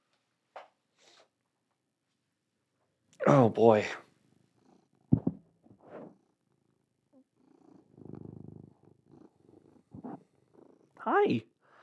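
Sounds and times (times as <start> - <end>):
speech: 3.3 - 4.0
cat purring while being held: 4.3 - 11.2
rustles and thumps: 5.1 - 6.1.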